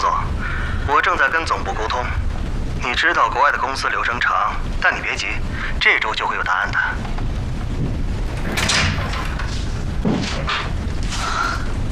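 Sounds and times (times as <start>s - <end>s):
steady rumble: 0.0s - 11.9s
speech: 1.1s - 2.2s, 2.8s - 7.2s
office door swinging open with a low thud and scraping: 8.3s - 10.8s.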